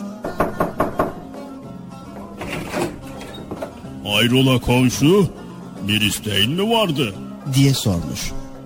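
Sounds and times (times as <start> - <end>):
knocking on a door: 0.2 - 1.4
speech: 4.1 - 8.4.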